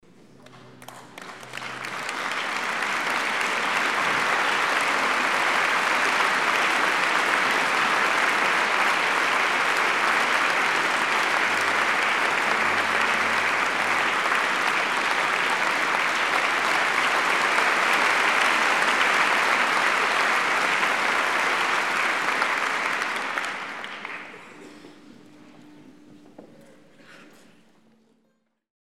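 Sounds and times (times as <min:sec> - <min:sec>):
applause in a concert hall: 0:00.3 - 0:27.8.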